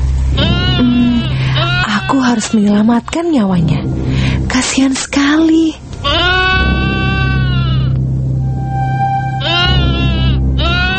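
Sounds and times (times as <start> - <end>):
low steady hum: 0.0 - 10.9
goat bleating: 0.4 - 2.8, 6.0 - 8.0, 9.4 - 10.9
speech: 2.2 - 6.4.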